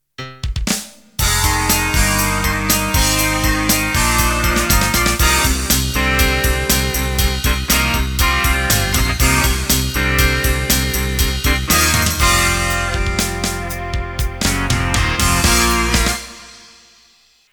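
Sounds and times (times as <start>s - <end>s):
heavy rock music intro: 1.2s - 16.8s.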